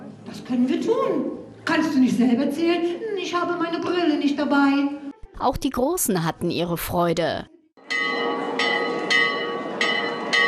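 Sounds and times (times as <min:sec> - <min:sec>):
speech: 0:00.3 - 0:08.0
large castle tower bell ringing: 0:07.8 - 0:10.4.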